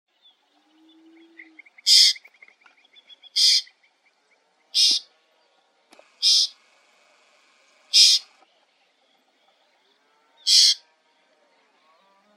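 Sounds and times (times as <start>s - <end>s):
white-banded mockingbird giving harsh rasping calls: 1.4s - 2.4s, 3.2s - 3.8s, 4.7s - 5.1s, 6.1s - 6.6s, 7.9s - 8.4s, 10.4s - 10.8s
soft chatter: 4.0s - 12.3s.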